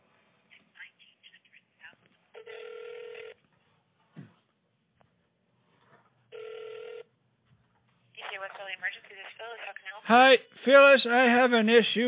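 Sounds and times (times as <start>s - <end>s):
telephone ringback tones over a phone line: 2.4s - 3.4s, 6.3s - 7.1s
speech: 8.5s - 12.0s.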